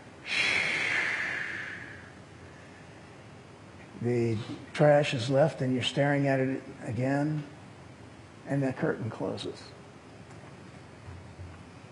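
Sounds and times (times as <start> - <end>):
man on a stage inhaling loudly: 0.2 - 2.9
speech: 4.0 - 7.6, 8.5 - 9.8.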